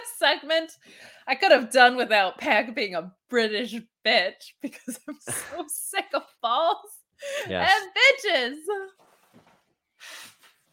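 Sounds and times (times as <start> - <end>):
speech: 0.2 - 9.0
person blowing nose: 10.0 - 10.7.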